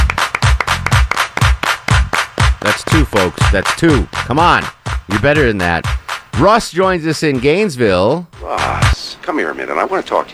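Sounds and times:
rhythmic loud punchy hand claps: 0:00.0 - 0:04.0
deep thumping bass line: 0:00.0 - 0:07.6, 0:08.4 - 0:09.0
speech: 0:03.0 - 0:10.3.

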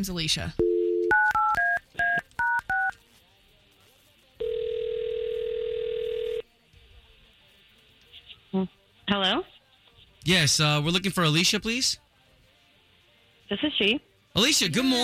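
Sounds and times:
speech: 0:00.0 - 0:00.6, 0:08.6 - 0:09.5, 0:10.2 - 0:12.0, 0:13.5 - 0:15.0
long steady telephone tone: 0:00.6 - 0:01.8, 0:04.4 - 0:06.4.

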